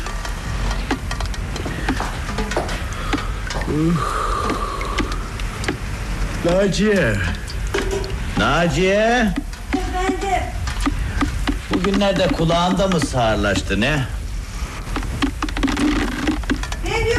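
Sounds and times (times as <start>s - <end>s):
sharper drips and taps: 0.0s - 14.0s, 14.9s - 16.9s
steady rain falling: 0.0s - 17.1s
voice murmuring: 3.6s - 4.6s
speech: 3.7s - 4.2s, 6.4s - 7.4s, 8.4s - 9.4s, 11.7s - 14.2s.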